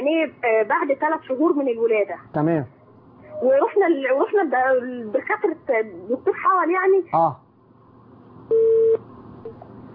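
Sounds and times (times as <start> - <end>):
speech: 0.2 - 2.8, 3.4 - 7.4
telephone busy tone after a dropped call: 8.5 - 9.6.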